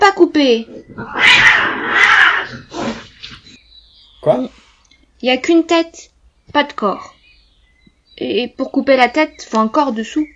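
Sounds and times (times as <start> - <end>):
speech: 0.4 - 1.6, 4.2 - 4.6, 5.2 - 7.2, 8.2 - 10.3
cat yowling: 1.0 - 3.1.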